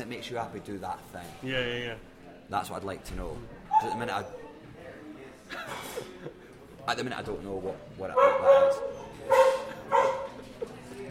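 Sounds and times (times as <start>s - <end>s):
speech: 0.0s - 4.4s, 5.5s - 9.4s
dog barking: 3.7s - 4.1s, 8.1s - 10.4s.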